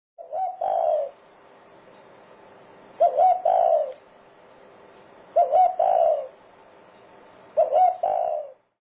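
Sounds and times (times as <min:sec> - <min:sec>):
dove: 0:00.2 - 0:01.2, 0:02.9 - 0:04.1, 0:05.3 - 0:06.4, 0:07.5 - 0:08.7.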